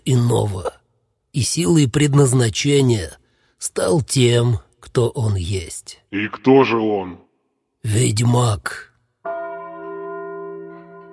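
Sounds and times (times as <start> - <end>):
speech: 0.0 - 7.2, 7.8 - 8.9
guardhouse bell tolling midnight: 9.2 - 11.1.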